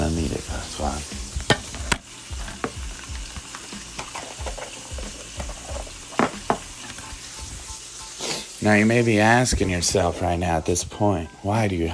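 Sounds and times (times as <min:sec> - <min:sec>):
chorizo frying in butter in a pan: 0:00.0 - 0:10.9
utensil scraping a pan while stirring: 0:03.5 - 0:07.0
speech: 0:08.6 - 0:11.9.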